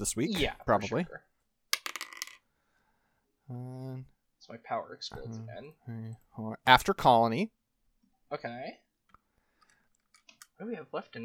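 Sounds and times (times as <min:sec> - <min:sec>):
speech: 0:00.0 - 0:01.3, 0:03.5 - 0:07.6, 0:08.3 - 0:08.8, 0:10.6 - 0:11.2
dice clattering across a hard surface: 0:01.7 - 0:02.4.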